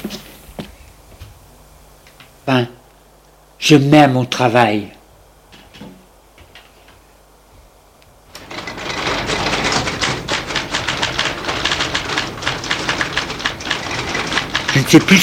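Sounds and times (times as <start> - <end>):
speech: 2.5 - 2.7, 3.7 - 4.9, 14.9 - 15.2
typing on a typewriter: 8.4 - 15.2.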